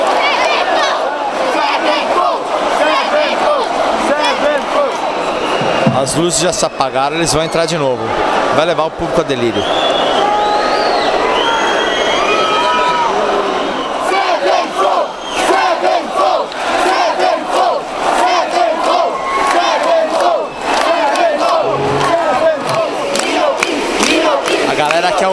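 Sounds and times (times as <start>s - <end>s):
large concert crowd chanting and cheering for an encore: 0.0s - 25.3s
concert crowd whistles: 5.1s - 7.8s, 9.5s - 12.8s, 13.4s - 14.1s, 15.1s - 15.6s
speech: 6.0s - 10.2s.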